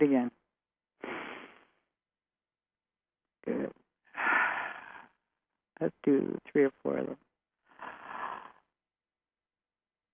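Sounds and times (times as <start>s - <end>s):
speech: 0.0s - 0.4s, 5.8s - 7.3s
deep belly breathing in and out: 4.1s - 5.3s, 7.7s - 8.8s.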